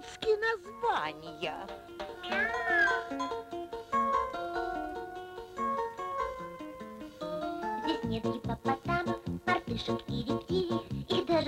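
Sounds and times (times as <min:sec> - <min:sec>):
bright steady piano-like music: 0:00.0 - 0:11.4
speech: 0:00.2 - 0:03.5, 0:08.1 - 0:09.1, 0:09.7 - 0:11.4
kitten meowing: 0:02.2 - 0:03.2.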